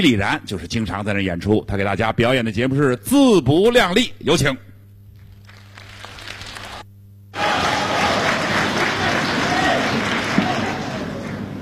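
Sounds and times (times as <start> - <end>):
speech: 0.0 - 4.7
audience applause at a crosstalk comedy show: 5.4 - 6.8, 7.4 - 11.6.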